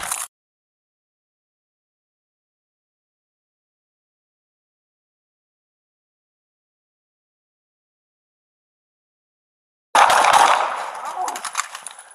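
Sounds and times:
gunshots fired during a police confrontation: 10.0s - 12.1s.

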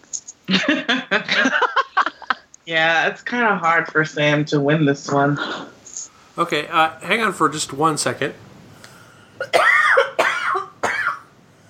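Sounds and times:
speech: 0.5s - 1.4s, 2.7s - 5.7s, 6.4s - 8.5s
laughter: 0.5s - 2.5s
harsh coughs: 9.4s - 11.3s.

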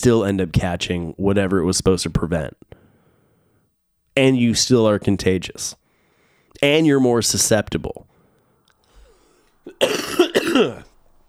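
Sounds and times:
speech: 0.0s - 2.8s, 4.2s - 5.8s, 6.6s - 8.1s, 9.7s - 10.9s
coughing and throat clearing: 9.7s - 10.9s.

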